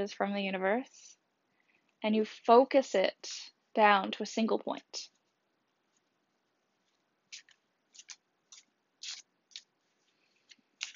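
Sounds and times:
speech: 0.0 - 1.2, 2.0 - 5.1
deck of tarot cards being shuffled: 6.8 - 10.9.

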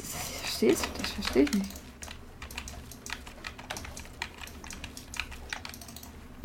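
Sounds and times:
speech: 0.6 - 1.8
computer keyboard keys pressed during a video game: 1.2 - 6.1.

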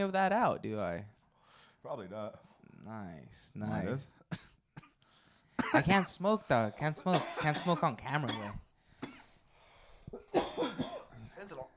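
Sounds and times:
speech: 0.0 - 1.2, 1.8 - 4.5, 5.7 - 8.6, 10.1 - 11.7
person coughing: 4.3 - 5.0, 5.6 - 6.2, 6.9 - 9.4, 10.1 - 11.3.

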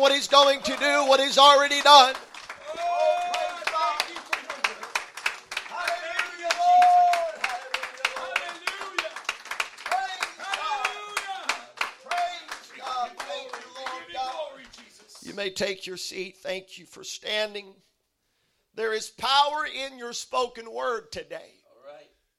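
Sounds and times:
speech: 0.0 - 2.3, 15.4 - 17.9, 18.8 - 21.6
crowd clapping: 0.0 - 15.4.

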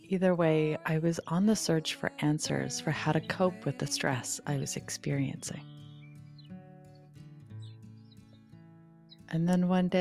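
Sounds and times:
speech: 0.1 - 5.8, 9.3 - 9.9
short bright bird chirps: 5.3 - 9.4.

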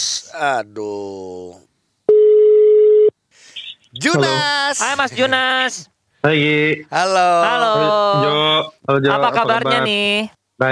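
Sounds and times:
speech: 0.3 - 1.7, 3.9 - 10.6
telephone ringing tone: 2.1 - 3.1.

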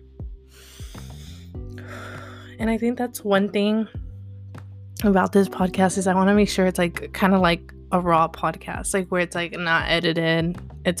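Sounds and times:
deep breath in and out: 0.5 - 2.6
speech: 2.6 - 4.0, 5.0 - 10.9.

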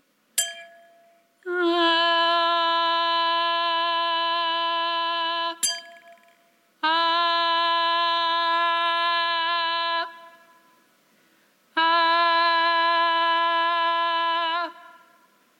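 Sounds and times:
wine glass with a straw tapped with a bright ring: 0.4 - 1.2, 5.6 - 6.4
voice singing a steady tone matching the wine glass fundamental: 1.4 - 10.9, 11.7 - 15.5.

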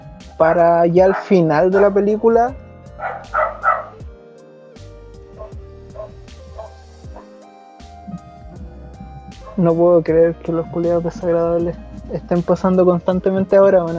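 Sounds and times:
speech: 0.4 - 3.1, 9.6 - 13.9
dog barking: 1.0 - 2.0, 3.0 - 4.1, 5.4 - 7.4, 8.1 - 9.6.

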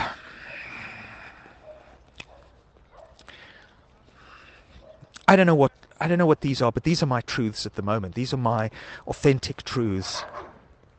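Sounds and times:
dog barking: 1.6 - 3.2, 10.0 - 10.6
speech: 5.3 - 10.4
dog yelping: 10.2 - 10.6.

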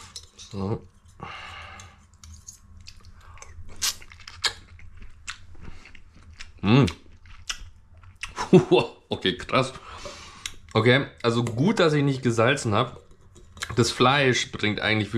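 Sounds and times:
speech: 0.5 - 0.9, 6.7 - 7.0, 8.5 - 9.9, 10.8 - 13.0, 13.8 - 15.1
crunching and chewing a dish: 1.8 - 8.4.

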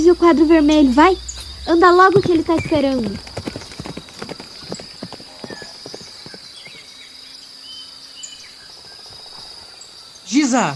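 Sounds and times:
speech: 0.0 - 3.3, 10.5 - 10.7
faint bird chirps: 0.0 - 10.7
high insect buzz: 0.0 - 10.7
horse hooves clip-clopping: 1.4 - 6.9.

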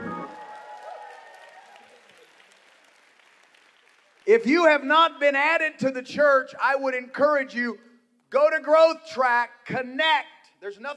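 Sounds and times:
large gathering applauding with hand claps: 0.0 - 4.9
speech: 4.3 - 10.9.

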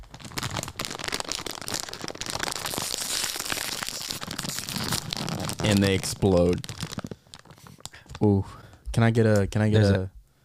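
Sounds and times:
plastic soy-containing snack bag being torn open: 0.0 - 8.1
speech: 5.6 - 6.7, 8.2 - 10.2.

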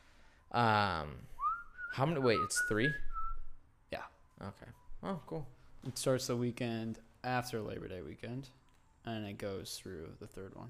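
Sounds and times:
speech: 0.5 - 1.3, 1.9 - 3.1, 3.9 - 10.6
whistled melody in a playing song: 1.2 - 3.6.

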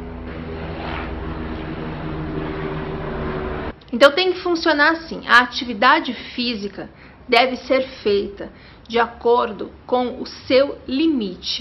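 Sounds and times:
helicopter flying overhead: 0.0 - 3.8
speech: 3.9 - 11.5.

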